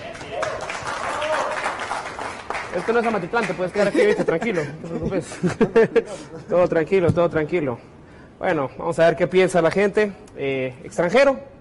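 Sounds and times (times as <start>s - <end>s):
faint voices and cheers in crowd: 0.0s - 1.7s
audience applause: 0.0s - 3.9s
speech: 2.8s - 11.5s
laughter: 3.6s - 6.6s.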